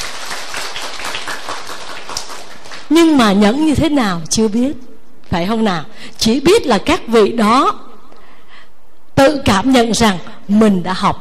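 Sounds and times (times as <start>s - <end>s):
audience applause at a Buddhist teaching session: 0.0s - 2.9s
speech: 2.9s - 7.8s, 9.3s - 11.1s.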